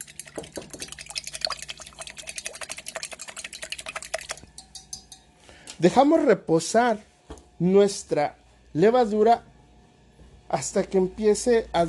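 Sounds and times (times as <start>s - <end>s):
spoon stirring yeast into warm milk: 0.0s - 5.4s
spoon clinking: 3.6s - 5.4s
speech: 5.8s - 9.5s, 10.5s - 11.8s.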